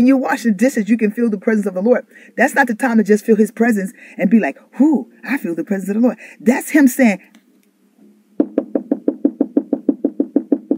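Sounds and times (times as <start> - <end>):
speech: 0.0 - 7.4
knocking on a door: 8.4 - 10.7.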